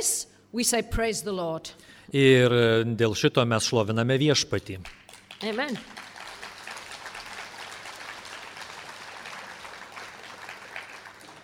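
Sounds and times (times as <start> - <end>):
speech: 0.0 - 6.0
audience applauding: 4.9 - 11.4.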